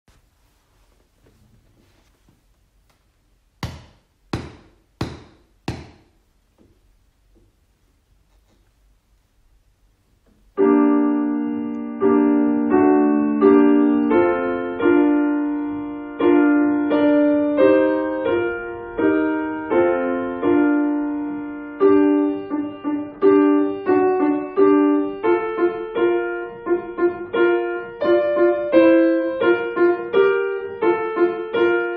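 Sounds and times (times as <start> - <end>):
piano duet playing a pavane at exam speed: 10.4 - 31.9.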